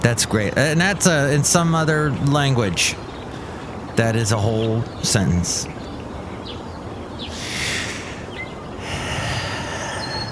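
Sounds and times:
speech: 0.0s - 3.1s, 4.0s - 5.8s
faint short squeaky chirps: 2.8s - 10.3s
loud exaggerated hissing breaths: 3.2s - 3.9s, 7.2s - 10.3s.

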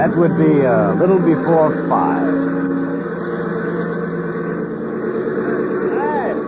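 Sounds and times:
speech: 0.0s - 2.8s
small airplane engine with thinned fuel mixture sputtering, landing and taxiing: 0.0s - 6.4s.

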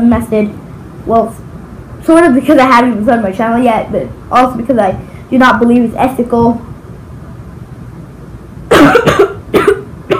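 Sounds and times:
speech: 0.0s - 1.4s, 2.0s - 6.7s
harsh coughs: 8.7s - 10.1s.

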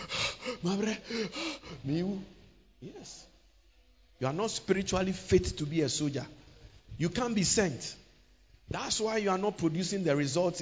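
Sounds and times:
preacher imitating heavy panting: 0.0s - 1.9s
speech: 0.6s - 3.4s, 4.2s - 8.0s, 8.7s - 10.5s.

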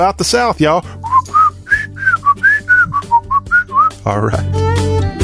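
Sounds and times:
speech: 0.0s - 1.0s, 4.0s - 5.1s
person whistling a TV theme tune: 1.0s - 4.0s.

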